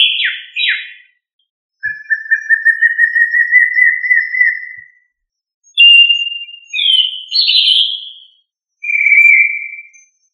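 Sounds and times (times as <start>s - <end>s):
Turdidae thrush singing whistled phrases: 0.0s - 1.2s, 1.8s - 10.3s.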